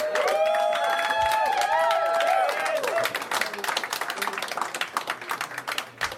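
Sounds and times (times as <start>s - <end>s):
audience whoops and cheers: 0.0s - 3.3s
large comedy-show audience clapping: 0.0s - 6.1s.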